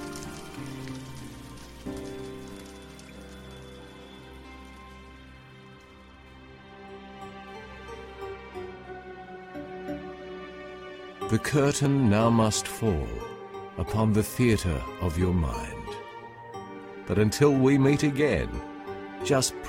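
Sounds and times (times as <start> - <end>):
rain pouring: 0.0 - 6.8
speech: 11.3 - 15.8, 17.1 - 19.6.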